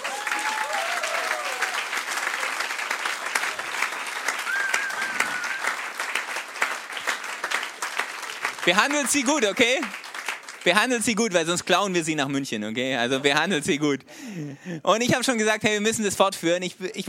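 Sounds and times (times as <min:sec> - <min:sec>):
faint whoops and cheers: 0:00.0 - 0:02.7, 0:04.4 - 0:05.9
crowd applauding the leadership team: 0:00.0 - 0:11.8
speech: 0:08.7 - 0:10.0, 0:10.6 - 0:17.0.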